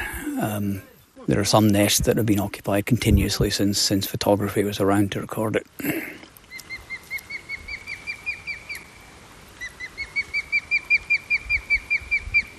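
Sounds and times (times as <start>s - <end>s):
speech: 0.4s - 6.1s
male osprey alarm calls near the nest: 6.5s - 9.0s, 9.6s - 12.5s.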